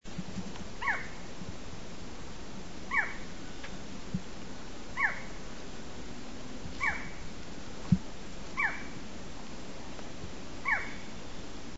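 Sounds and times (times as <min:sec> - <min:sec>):
barred forest falcon calling: 0:00.8 - 0:01.2, 0:02.9 - 0:03.9, 0:04.9 - 0:05.4, 0:06.8 - 0:07.3, 0:08.6 - 0:09.0, 0:10.6 - 0:11.4.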